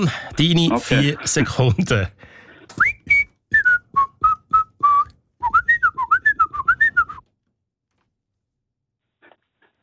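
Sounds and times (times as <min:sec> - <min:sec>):
speech: 0:00.0 - 0:02.9
person whistling a late-1960s song tune imprecisely: 0:02.7 - 0:07.3.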